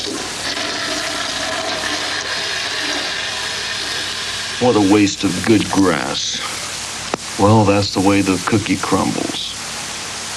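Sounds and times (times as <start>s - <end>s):
toilet flushing: 0.0s - 6.5s
speech: 4.6s - 6.5s, 7.4s - 9.4s.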